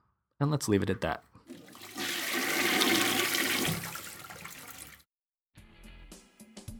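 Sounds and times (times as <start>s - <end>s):
speech: 0.4s - 1.3s
toilet flushing with a rushing whoosh of water: 1.5s - 5.0s.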